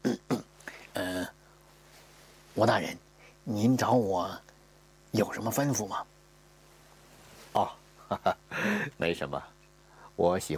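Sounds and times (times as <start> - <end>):
person acting out a throat clearing: 0.0 - 1.4
speech: 2.6 - 4.5, 5.1 - 6.1, 7.6 - 9.6, 10.2 - 10.5.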